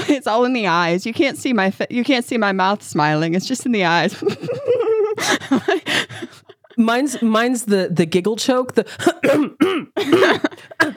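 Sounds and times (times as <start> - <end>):
speech: 0.1 - 6.0, 6.8 - 10.8
laughter: 4.1 - 6.8
person giving deliberate voiced throat-clearing coughs: 9.1 - 10.9.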